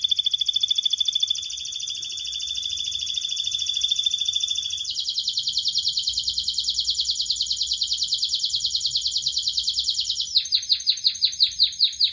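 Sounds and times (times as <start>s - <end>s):
canary singing a fast trill and rapid descending slurred notes: 0.0s - 12.1s.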